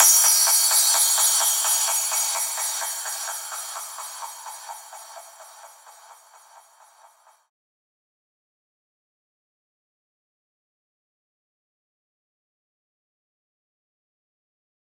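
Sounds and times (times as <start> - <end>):
crash sound effect in E at 128 BPM: 0.0 - 4.4.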